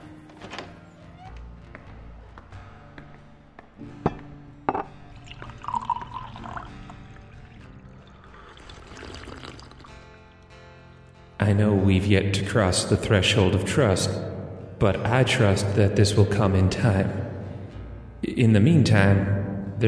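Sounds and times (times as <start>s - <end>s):
glass or bottle clinking and thunking: 4.1s - 6.7s
stiff drink pouring into a glass: 4.7s - 10.1s
speech: 11.5s - 17.2s, 18.4s - 19.8s.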